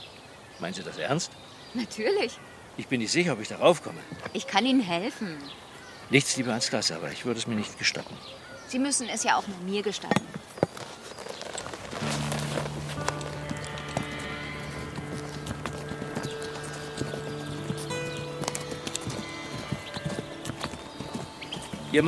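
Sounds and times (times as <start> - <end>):
speech: 0.6 - 10.4
ridden mare's hooves clip-clopping at a walk: 10.0 - 22.0
soft sustained humming tones: 12.0 - 22.0.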